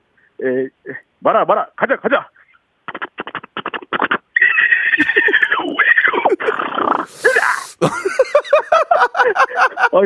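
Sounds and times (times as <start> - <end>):
speech: 0.4 - 2.4, 7.1 - 8.3, 9.2 - 10.0
person imitating a zebra whinny: 4.4 - 7.9
laughter: 5.0 - 10.0.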